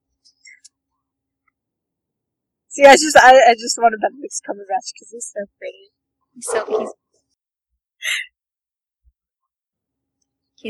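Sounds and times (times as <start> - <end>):
speech: 2.8 - 7.0
dog grumbling: 6.4 - 7.0.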